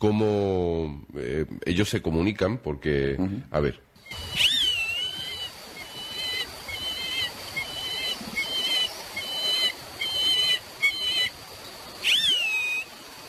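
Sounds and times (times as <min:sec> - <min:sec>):
speech: 0:00.0 - 0:04.6
soft continuous hiss of wind: 0:04.0 - 0:13.2
whistled calls of a bird in flight: 0:04.0 - 0:13.2.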